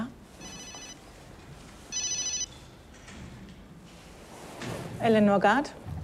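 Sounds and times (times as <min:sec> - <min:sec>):
mobile phone ringing in short electronic bursts: 0:00.4 - 0:01.1, 0:01.9 - 0:02.5
speech: 0:05.0 - 0:06.0.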